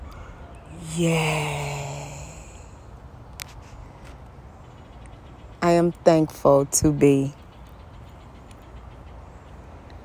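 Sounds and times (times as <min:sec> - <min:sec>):
deep breath released as a long voiced sigh during a guided breathing meditation: 0:00.8 - 0:02.9
speech: 0:01.0 - 0:01.6, 0:05.8 - 0:07.4.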